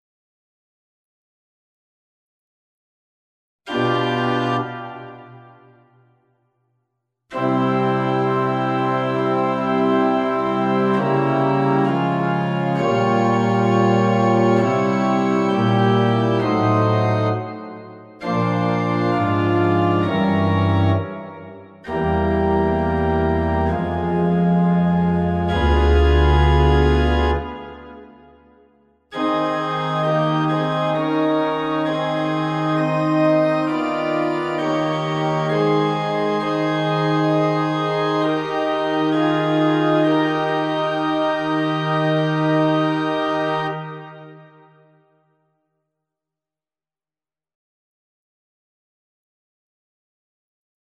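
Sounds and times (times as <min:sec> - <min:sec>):
instrumental music: 0:03.7 - 0:06.3, 0:07.3 - 0:45.0.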